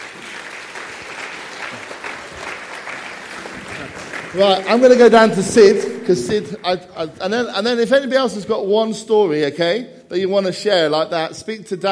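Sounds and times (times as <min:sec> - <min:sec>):
room full of people applauding: 0:00.0 - 0:06.8
speech: 0:04.3 - 0:11.9.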